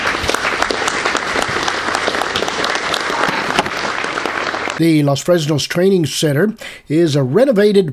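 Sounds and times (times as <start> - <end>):
large audience applause in a standing ovation: 0.0 - 4.8
speech: 4.8 - 7.9.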